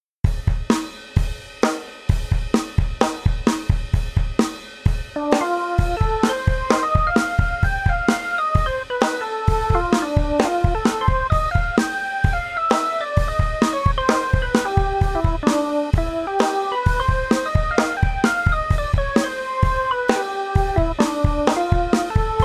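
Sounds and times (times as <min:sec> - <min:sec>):
sample drum: 0:00.2 - 0:22.4.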